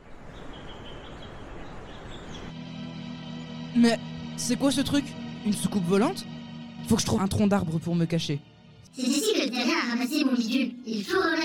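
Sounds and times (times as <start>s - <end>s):
faint bird chirps in a forest: 0.0s - 2.5s
speech: 3.8s - 6.3s, 6.9s - 11.4s.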